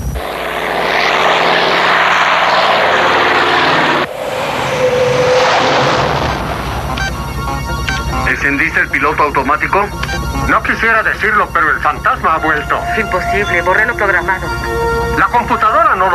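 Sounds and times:
aircraft turbine engines roaring: 0.0s - 16.1s
speech: 8.5s - 16.1s.

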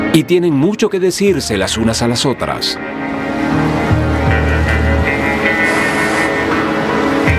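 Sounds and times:
speech: 0.1s - 3.1s
humpback whale song with moaning tones and squeal: 2.9s - 7.3s.

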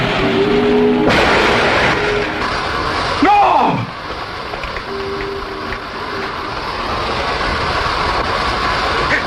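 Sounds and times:
vehicle engine roar: 0.0s - 9.2s
truck crashing into a car and bursting its radiator: 1.1s - 3.2s.

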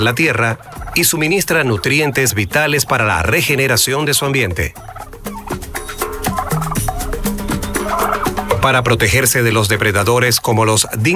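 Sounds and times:
speech: 0.0s - 5.0s, 8.6s - 11.1s
Australian brush turkey group gobbling and clucking: 0.0s - 11.1s.

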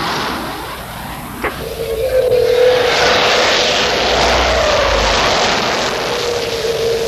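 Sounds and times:
jet aircraft engine roar during takeoff: 0.0s - 7.0s.

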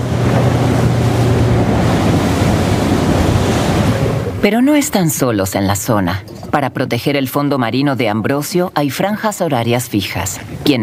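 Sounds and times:
wind noise: 0.0s - 4.4s
rushing sea water under a dive boat: 0.0s - 6.5s
dive boat engine drone at sea: 0.0s - 10.8s
speech: 4.4s - 10.8s.

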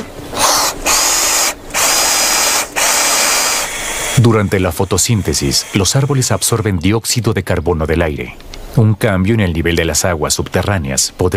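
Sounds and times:
power drill drilling a plate: 0.3s - 6.7s
speech: 4.2s - 11.3s.

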